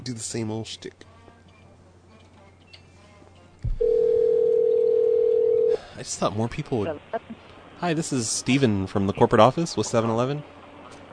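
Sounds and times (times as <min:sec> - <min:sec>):
speech: 0:00.0 - 0:01.1, 0:06.0 - 0:10.6
brief low thump from the telephone line picking up: 0:03.6 - 0:03.8
telephone dial tone: 0:03.8 - 0:05.8.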